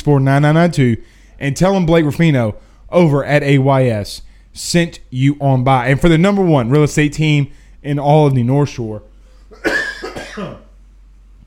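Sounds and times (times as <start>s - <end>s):
speech: 0.0s - 9.7s
harsh coughing: 9.4s - 10.8s.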